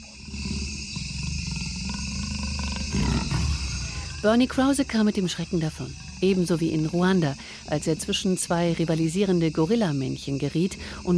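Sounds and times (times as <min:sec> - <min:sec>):
jaguar growling with guttural snarl: 0:00.0 - 0:07.4
hiss of forest insects: 0:00.0 - 0:11.1
speech: 0:04.2 - 0:11.1.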